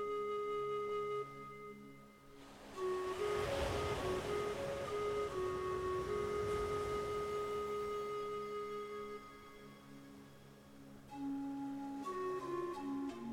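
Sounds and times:
calm sustained musical tones: 0:00.0 - 0:13.3
gentle ocean waves rolling onto sandy shore: 0:02.3 - 0:10.9.

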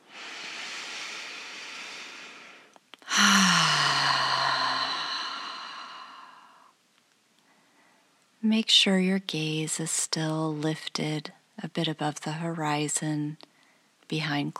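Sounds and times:
fuller exhalation through the mouth with a faint low voiced tone: 0:00.0 - 0:06.6
slow breathing during a guided meditation: 0:00.0 - 0:06.8
speech: 0:08.5 - 0:13.5, 0:14.1 - 0:14.5.

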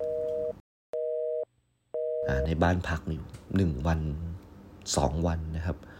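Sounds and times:
telephone busy tone after dialing: 0:00.0 - 0:02.4
speech: 0:02.3 - 0:05.9.

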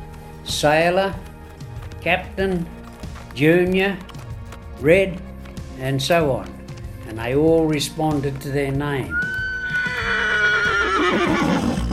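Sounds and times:
speech: 0:00.5 - 0:01.3, 0:02.0 - 0:02.8, 0:03.4 - 0:04.1, 0:04.8 - 0:05.2, 0:05.8 - 0:09.2, 0:11.1 - 0:11.6
working horse at a coal mine neighing: 0:09.1 - 0:11.9.

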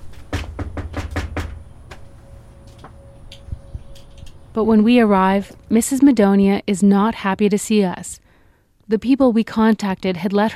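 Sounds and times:
firm knocks on a front door: 0:00.2 - 0:02.0
speech: 0:04.6 - 0:08.2, 0:08.9 - 0:10.5.

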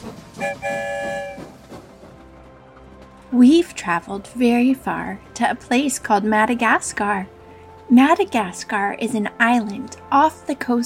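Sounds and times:
train horn: 0:00.0 - 0:01.8
train rumbling through a tunnel: 0:00.0 - 0:10.8
speech: 0:03.3 - 0:10.8.

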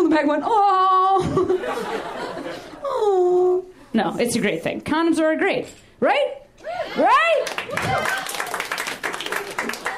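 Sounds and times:
speech: 0:00.1 - 0:02.0, 0:03.0 - 0:08.2
laughter: 0:01.2 - 0:03.0
comedy show audience applause: 0:07.4 - 0:09.9.

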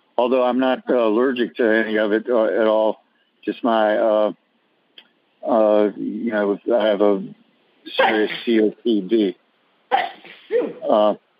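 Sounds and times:
speech: 0:00.2 - 0:04.4, 0:05.4 - 0:11.2
person sneezing loudly: 0:07.9 - 0:08.6, 0:09.9 - 0:11.0.

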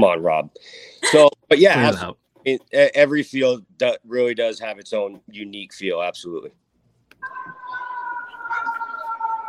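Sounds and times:
speech: 0:00.0 - 0:06.6
emergency vehicle siren: 0:07.2 - 0:09.4.

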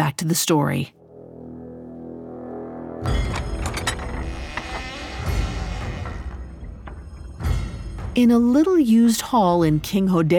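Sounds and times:
speech: 0:00.1 - 0:01.0, 0:08.2 - 0:10.3
heavy hidden secret passageway door grinding and creaking open: 0:03.1 - 0:07.3.

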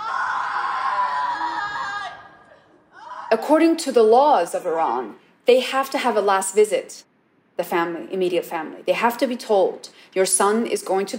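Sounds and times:
woman screaming on the street: 0:00.0 - 0:03.4
speech: 0:03.3 - 0:11.1.

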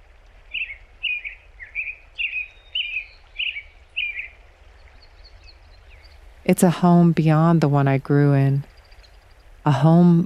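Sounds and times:
American robin singing clear caroling whistled phrases: 0:00.5 - 0:04.3
speech: 0:06.4 - 0:08.7, 0:09.6 - 0:10.2.

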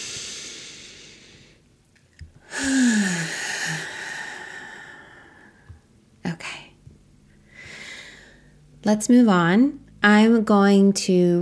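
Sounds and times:
deep breath: 0:00.0 - 0:01.6, 0:02.4 - 0:05.8, 0:07.4 - 0:08.6
steady hiss: 0:00.0 - 0:11.4
speech: 0:08.8 - 0:11.4.

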